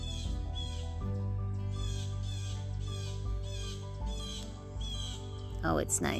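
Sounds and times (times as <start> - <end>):
birds squawking outdoors: 0.0 - 0.9, 1.7 - 5.5
speech: 5.6 - 6.1.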